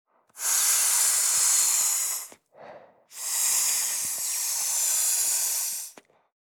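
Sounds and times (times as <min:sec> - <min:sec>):
blowing to inflate an inflatable rubber ring: 0:00.3 - 0:02.4, 0:03.1 - 0:06.0.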